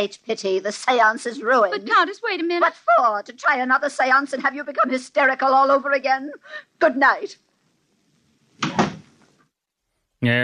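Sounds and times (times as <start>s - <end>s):
speech: 0.0s - 7.4s, 10.2s - 10.4s
door slamming shut with a doubled thud: 8.6s - 9.2s.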